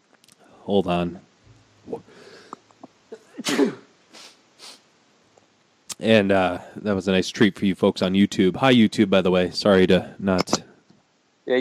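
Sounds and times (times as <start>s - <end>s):
speech: 0.7s - 1.3s, 1.9s - 2.2s, 6.0s - 10.6s
loud forceful sneeze: 3.1s - 4.8s
soft breathy sniffs or exhales: 4.1s - 4.9s.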